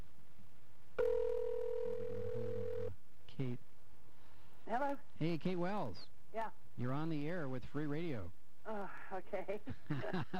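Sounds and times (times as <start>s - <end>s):
telephone line ringing on an outgoing call during a live radio broadcast: 1.0s - 2.9s
speech: 3.4s - 3.7s, 4.7s - 10.3s
laughter: 9.7s - 10.3s.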